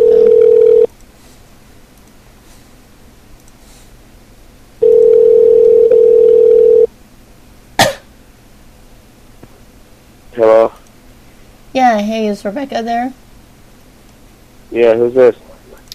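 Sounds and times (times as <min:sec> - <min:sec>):
telephone dial tone: 0:00.0 - 0:00.9, 0:04.8 - 0:06.9
speech: 0:11.8 - 0:13.2, 0:14.8 - 0:15.5.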